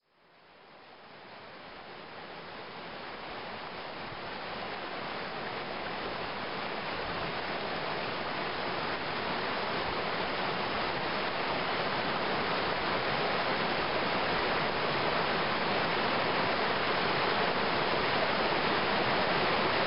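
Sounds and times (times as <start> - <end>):
small stream and waterfall rushing in northern Laos: 0.2 - 19.8.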